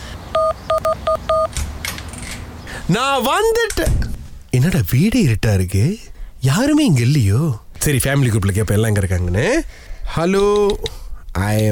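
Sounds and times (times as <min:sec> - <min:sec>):
electronic door keypad beeps: 0:00.3 - 0:01.6
speech: 0:02.9 - 0:11.7.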